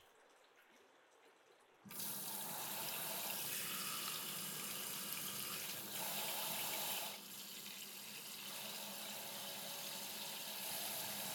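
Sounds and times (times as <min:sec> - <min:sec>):
water running from a tap while hair is rinsed: 0:01.9 - 0:11.3.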